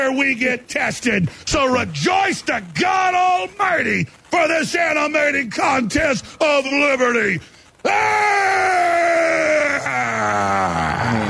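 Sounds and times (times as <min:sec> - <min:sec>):
speech: 0:00.1 - 0:10.8
man screaming wildly in a played clip: 0:07.8 - 0:11.2.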